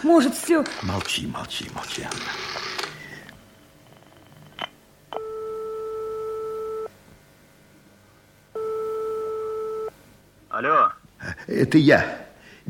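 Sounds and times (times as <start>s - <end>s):
speech: 0.0s - 2.8s, 10.6s - 12.6s
telephone call tone on the line: 5.2s - 6.9s, 8.6s - 9.9s.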